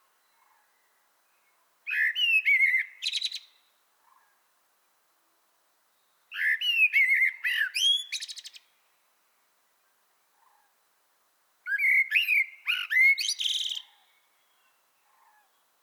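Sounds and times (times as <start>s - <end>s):
Common blackbird Turdus merula singing: 0.0s - 4.4s, 5.9s - 8.8s, 11.7s - 15.8s.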